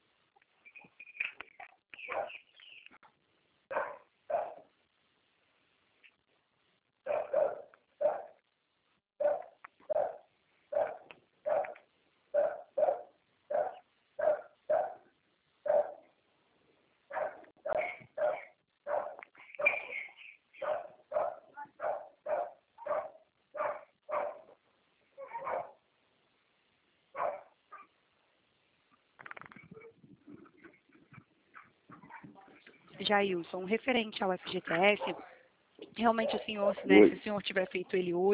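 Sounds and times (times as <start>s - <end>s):
dog barking: 2.1s - 2.5s, 3.7s - 4.7s, 7.0s - 8.4s, 9.2s - 11.8s, 12.4s - 15.0s, 15.6s - 16.1s, 17.1s - 19.8s, 20.6s - 24.6s, 25.2s - 25.8s, 27.2s - 28.0s
speech: 33.1s - 35.3s, 36.0s - 38.3s.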